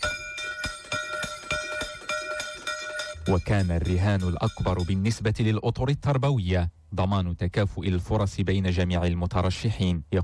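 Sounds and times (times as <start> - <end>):
school bell ringing at an exam centre to signal the start of an exam: 0.0 - 5.2
speech: 3.3 - 10.2.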